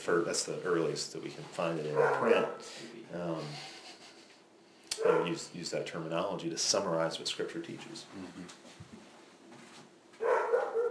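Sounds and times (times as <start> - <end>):
speech: 0.0 - 3.8, 5.0 - 8.9
female dog barking excitedly: 1.9 - 2.6, 5.0 - 5.4, 10.2 - 10.8.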